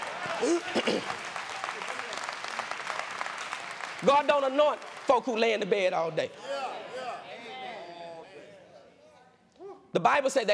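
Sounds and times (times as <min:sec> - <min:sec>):
crowd clapping: 0:00.0 - 0:06.3
speech: 0:00.3 - 0:01.9, 0:04.0 - 0:06.5, 0:10.0 - 0:10.5.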